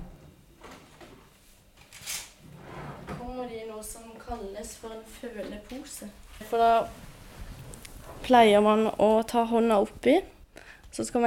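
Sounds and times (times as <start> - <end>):
drawer sliding open with a rough scraping rustle: 2.0 - 3.2
speech: 3.8 - 7.1, 8.2 - 11.2.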